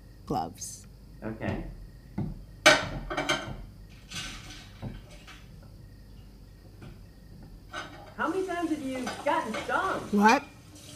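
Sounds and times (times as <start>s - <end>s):
speech: 0.3s - 3.3s, 8.8s - 10.5s
dishes being set down in a sink: 2.2s - 5.5s, 7.7s - 10.9s.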